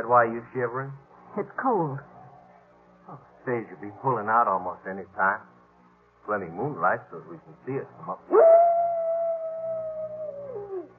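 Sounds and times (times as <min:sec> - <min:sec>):
speech: 0:00.0 - 0:02.1, 0:03.1 - 0:05.5, 0:06.3 - 0:08.6
coyote howling on a moonlit night: 0:08.2 - 0:10.9.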